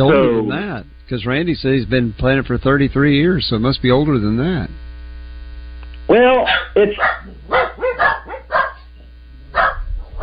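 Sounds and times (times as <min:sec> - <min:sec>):
speech: 0:00.0 - 0:04.8, 0:06.1 - 0:08.1
dog barking in a studio: 0:06.4 - 0:10.2.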